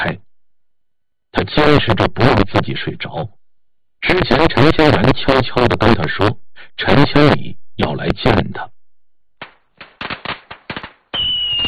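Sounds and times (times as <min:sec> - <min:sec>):
speech: 0:00.0 - 0:00.2, 0:01.3 - 0:03.4, 0:04.0 - 0:08.8
firecrackers crackling and bursting at a roadside gathering: 0:09.4 - 0:11.6.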